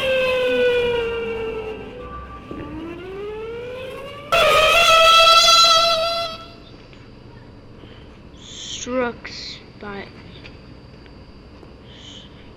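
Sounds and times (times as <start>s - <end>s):
siren wailing: 0.0s - 6.7s
speech: 9.1s - 10.2s.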